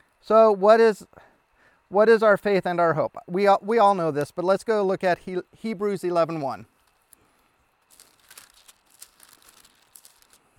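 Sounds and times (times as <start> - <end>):
speech: 0.2 - 1.2, 1.9 - 6.7
thin Bible pages being turned: 7.9 - 10.5.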